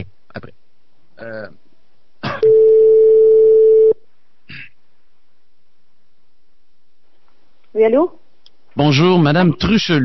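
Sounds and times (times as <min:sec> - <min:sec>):
telephone ringing tone from an outgoing call: 0:02.4 - 0:04.0
speech: 0:07.8 - 0:08.2, 0:08.8 - 0:10.0.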